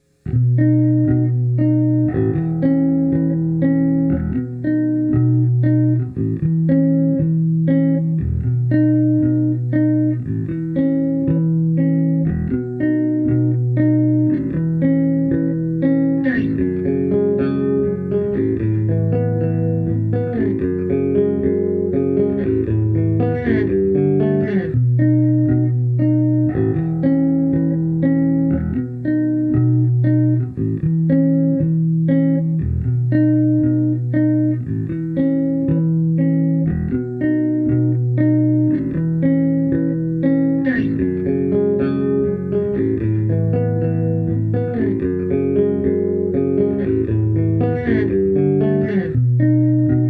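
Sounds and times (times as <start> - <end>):
chords: 0.0 - 50.0.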